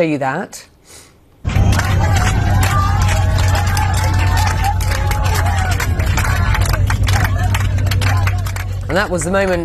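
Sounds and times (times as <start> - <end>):
speech: 0.0 - 1.0, 8.9 - 9.6
crowd of relieved passengers cheering and clapping inside an airplane cabin: 1.4 - 9.6
passengers whooping inside an airplane cabin: 1.5 - 8.9
steady low airplane engine roar: 1.5 - 9.6.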